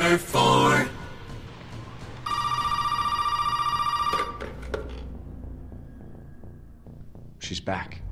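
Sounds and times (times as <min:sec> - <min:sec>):
speech: 0:00.1 - 0:00.6, 0:07.7 - 0:08.0
telephone ringing in a video game: 0:02.2 - 0:05.0.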